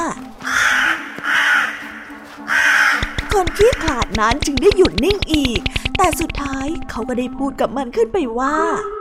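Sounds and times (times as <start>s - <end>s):
crow cawing: 0.4s - 3.8s
speech: 3.4s - 8.9s.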